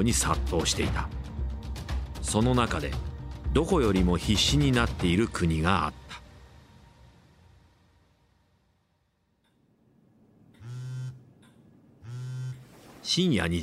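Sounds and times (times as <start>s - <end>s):
speech: 0.0s - 1.2s, 2.3s - 6.0s, 13.1s - 13.6s
electronic telephone ringtone: 10.6s - 11.2s, 12.0s - 12.6s.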